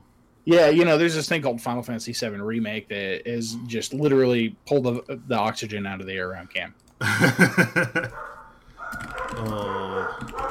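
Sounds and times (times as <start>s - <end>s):
speech: 0.4s - 8.4s, 9.3s - 10.3s
laughter: 7.0s - 8.2s
sharp dog barks: 9.6s - 10.4s.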